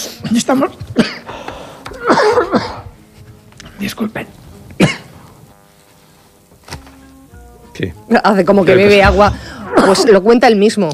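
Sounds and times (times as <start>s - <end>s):
speech: 0.3s - 1.2s, 3.8s - 4.4s, 7.8s - 10.9s
man coughing after swallowing an almond: 2.0s - 2.9s, 4.8s - 5.2s.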